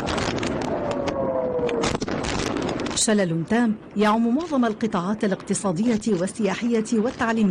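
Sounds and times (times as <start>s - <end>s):
air raid siren wailing with a falling tone: 0.1s - 2.0s
speech: 3.1s - 7.4s.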